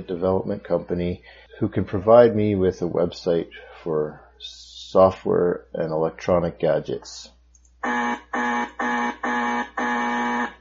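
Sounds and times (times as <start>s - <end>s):
speech: 0.0s - 8.1s
electronic buzzer: 7.8s - 10.5s.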